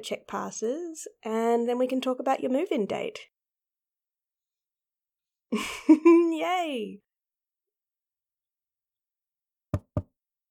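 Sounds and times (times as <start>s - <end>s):
speech: 0.0s - 3.3s, 5.5s - 7.1s
knocking on a roommate's open wooden door: 9.8s - 10.1s.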